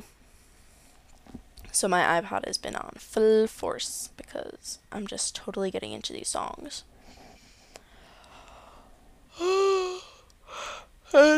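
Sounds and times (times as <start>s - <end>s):
speech: 1.8s - 6.9s, 11.1s - 11.3s
soft intake of breath: 7.0s - 10.9s
breathy yawn with drawn-out voiced tone: 9.3s - 10.9s.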